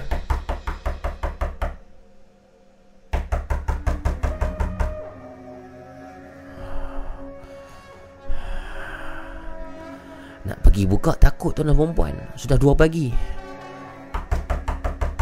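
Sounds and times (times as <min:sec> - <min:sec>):
loud knocking on a door: 0:00.0 - 0:01.8, 0:03.1 - 0:05.0, 0:14.1 - 0:15.2
speech: 0:10.8 - 0:13.4.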